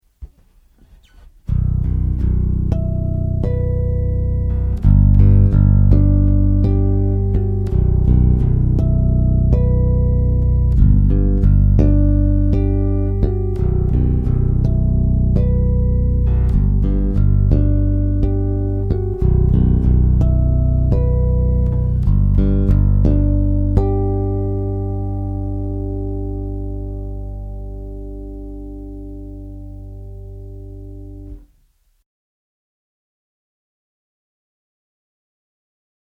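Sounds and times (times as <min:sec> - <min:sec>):
bass through Surine piezo pickup: 0:01.2 - 0:31.7.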